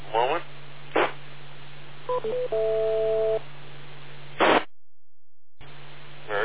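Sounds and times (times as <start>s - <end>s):
digital voice signal static hiss on analog FM radio: 0.1s - 1.2s, 4.4s - 4.7s, 5.6s - 6.4s
brief electronic tones on analog FM radio: 2.1s - 3.4s
sharp noise bursts on analog FM radio: 4.3s - 4.7s.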